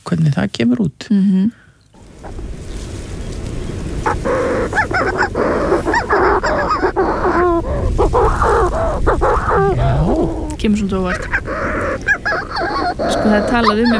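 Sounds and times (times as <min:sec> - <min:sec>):
speech: 0:00.1 - 0:01.6, 0:04.0 - 0:05.7, 0:07.6 - 0:11.8, 0:13.0 - 0:13.9
constant rush of wind or surf: 0:02.0 - 0:10.6
black-backed agile-flying bird shrieking at its breeding grounds: 0:02.0 - 0:13.9.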